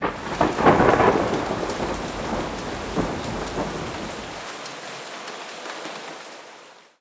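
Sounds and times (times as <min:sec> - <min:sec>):
thunder: 0:00.0 - 0:04.5
heavy rain: 0:00.0 - 0:06.9.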